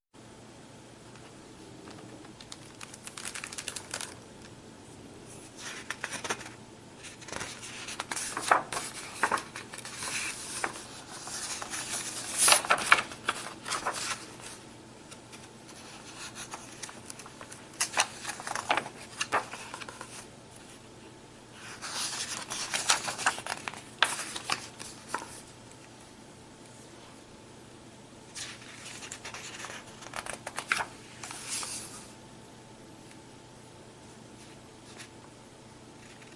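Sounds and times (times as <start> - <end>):
book pages turning: 1.2 - 4.5, 5.3 - 20.7, 21.6 - 25.5, 28.3 - 32.1, 36.0 - 36.3.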